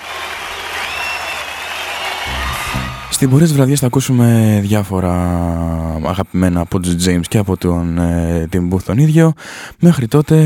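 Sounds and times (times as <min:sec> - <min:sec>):
audience applauding steadily: 0:00.0 - 0:03.5
low rumble: 0:02.3 - 0:03.5
speech: 0:03.2 - 0:10.4.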